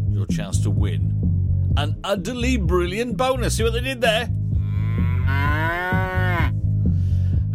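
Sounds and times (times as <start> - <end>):
steady thumping musical beat: 0.0 - 7.5
speech: 0.2 - 4.4
cow mooing: 4.6 - 6.6.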